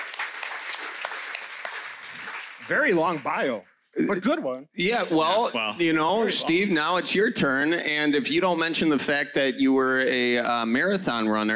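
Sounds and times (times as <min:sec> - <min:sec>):
live event audience applause after a speaker introduction: 0:00.0 - 0:03.6
sharp claps: 0:00.0 - 0:03.7
speech: 0:02.7 - 0:11.5.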